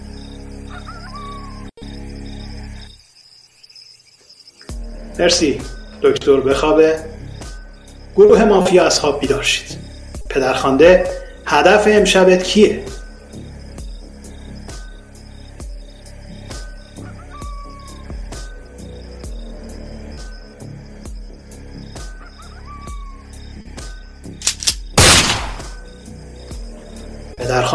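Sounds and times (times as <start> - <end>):
steady rhythmic music track: 4.6 - 27.7
speech: 5.2 - 7.1, 8.2 - 13.0
sharp pops: 24.4 - 25.8
gunshot sound effect: 24.5 - 25.9.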